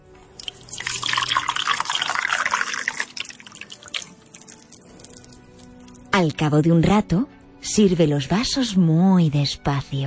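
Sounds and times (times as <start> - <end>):
hot water pouring into a teapot over tea leaves: 0.3 - 6.1
speech: 6.2 - 10.0.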